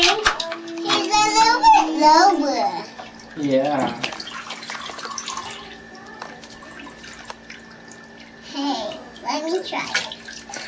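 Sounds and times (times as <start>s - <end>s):
water running into a bathtub: 0.0s - 10.6s
speech: 3.4s - 4.1s, 9.5s - 10.1s.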